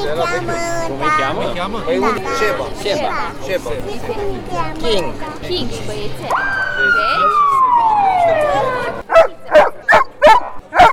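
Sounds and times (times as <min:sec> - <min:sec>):
voices and crowd chatter: 0:00.0 - 0:10.9
descending siren wail: 0:06.3 - 0:09.0
trained police dog barking sharply: 0:09.1 - 0:10.9.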